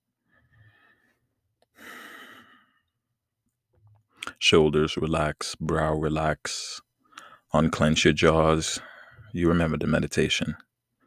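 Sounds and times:
deep breath during a guided meditation: 0:00.2 - 0:03.0, 0:07.0 - 0:07.5, 0:08.8 - 0:09.3
speech: 0:04.4 - 0:06.8, 0:07.5 - 0:10.7.

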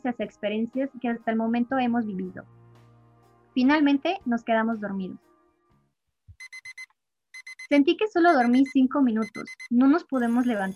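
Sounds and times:
speech: 0:00.0 - 0:02.6, 0:03.6 - 0:05.3, 0:07.7 - 0:10.7
alarm clock beeping: 0:06.4 - 0:10.7.

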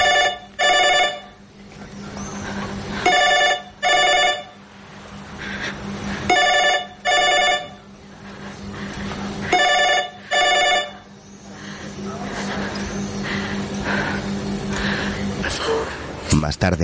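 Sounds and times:
telephone ringing in double bursts: 0:00.0 - 0:01.4, 0:03.0 - 0:04.6, 0:06.3 - 0:07.8, 0:09.5 - 0:11.1
low steady hum: 0:00.0 - 0:16.8.

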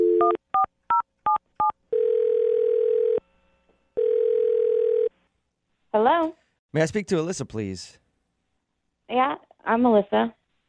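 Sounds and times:
steady telephone ringing tone: 0:00.0 - 0:00.7, 0:01.3 - 0:03.2, 0:04.0 - 0:05.1
speech: 0:06.0 - 0:08.0, 0:09.1 - 0:10.4.

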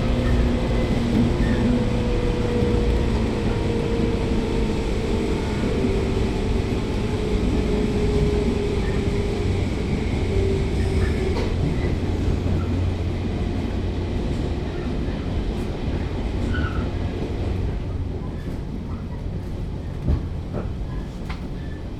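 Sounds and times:
Shin-Etsu Line Type 115 train running from Kasashima to Omigawa: 0:00.0 - 0:21.9.

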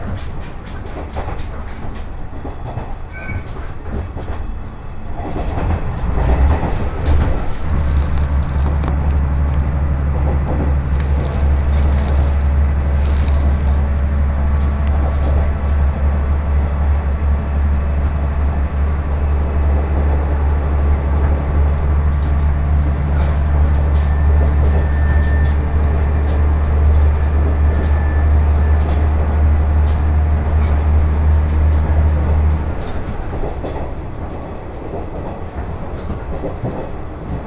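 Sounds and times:
rattling and clicking from the train car and rails: 0:00.0 - 0:37.4.

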